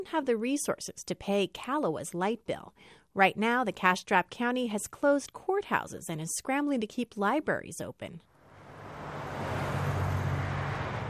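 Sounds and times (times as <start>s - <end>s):
speech: 0.0s - 8.3s
fleet of utility service trucks rumbling past: 8.4s - 11.0s.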